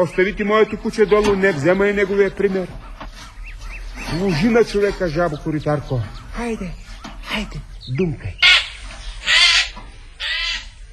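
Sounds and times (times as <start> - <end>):
speech: 0.0 - 3.3, 4.0 - 8.4
magpie chattering calls arriving at its nest: 8.3 - 10.8.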